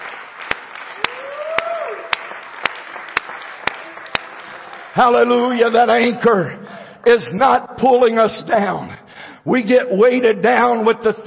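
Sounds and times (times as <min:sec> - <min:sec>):
audience at a worship service clapping in unison: 0:00.0 - 0:05.8
speech: 0:05.0 - 0:11.2.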